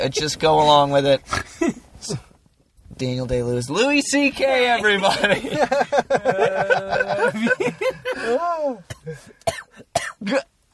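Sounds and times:
speech: 0.0s - 2.3s, 3.0s - 10.5s
laughter: 5.0s - 9.2s
person coughing harshly: 8.0s - 10.5s.

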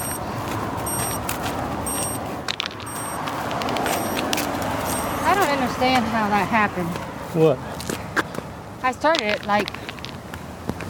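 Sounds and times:
electronic alarm beeping in short high-pitched bursts: 0.0s - 2.3s, 2.9s - 3.3s, 3.9s - 5.4s
outdoor traffic: 0.0s - 10.8s
speech: 5.8s - 7.7s, 8.8s - 9.8s.

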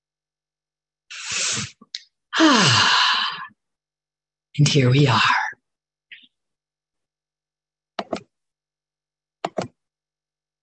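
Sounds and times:
speech: 2.4s - 3.0s, 4.6s - 5.4s
person taking slow easy breaths during a guided relaxation: 2.4s - 3.6s.

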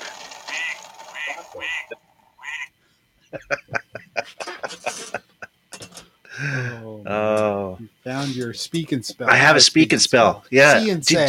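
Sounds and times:
duck quacking: 0.5s - 2.7s
speech: 1.5s - 2.1s, 3.3s - 3.8s, 8.4s - 11.2s
laughter: 3.3s - 5.6s.

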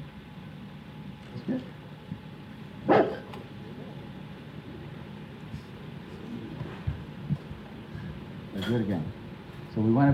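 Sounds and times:
speech: 1.5s - 1.8s, 8.7s - 9.2s, 9.8s - 10.1s
Rottweiler barking: 2.9s - 3.3s.

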